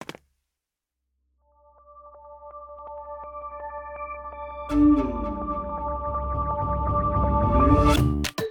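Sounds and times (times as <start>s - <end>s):
intro buildup menu music: 1.6s - 8.4s.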